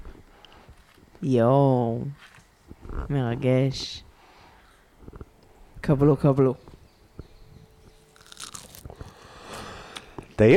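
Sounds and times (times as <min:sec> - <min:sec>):
speech: 0:01.2 - 0:02.3, 0:02.9 - 0:04.1, 0:05.8 - 0:06.7, 0:10.4 - 0:10.5
chewing: 0:08.2 - 0:09.6
crunchy bites into crispy fried eggplant coated in cornflour: 0:08.2 - 0:10.1.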